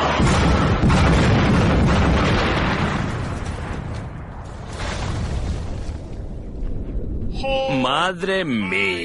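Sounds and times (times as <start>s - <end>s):
powerful fuse-set explosion with shock wave: 0.1s - 7.3s
speech: 8.1s - 9.0s.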